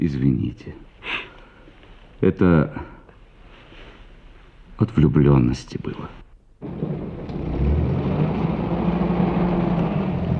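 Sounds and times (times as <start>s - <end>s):
speech: 0.0s - 1.2s, 2.2s - 2.9s, 4.8s - 6.9s
heavy bus engine rumbling as bus pulls away: 6.6s - 10.3s.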